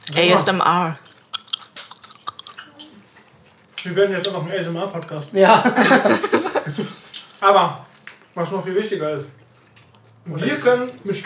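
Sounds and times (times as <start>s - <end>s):
wet smacking and chewing while eating ice cream: 0.0s - 5.3s, 6.6s - 8.4s, 9.2s - 11.1s
speech: 0.1s - 1.0s, 3.8s - 7.8s, 8.4s - 9.4s, 10.2s - 11.2s
laughter: 5.4s - 7.1s.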